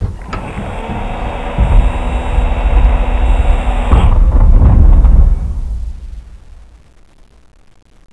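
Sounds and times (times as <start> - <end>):
alien door: 0.0 - 6.2.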